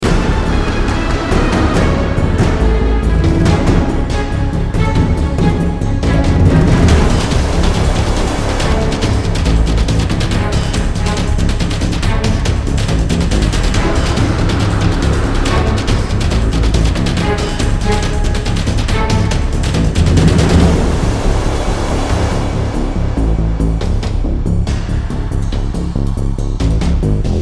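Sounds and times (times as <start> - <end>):
dark game music loop: 0.0 - 27.4.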